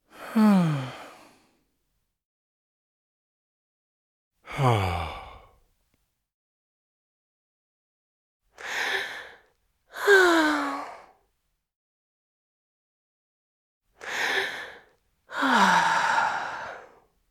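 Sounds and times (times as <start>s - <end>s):
person sighing: 0.2s - 1.2s, 4.5s - 5.5s, 10.0s - 10.7s, 15.3s - 16.9s.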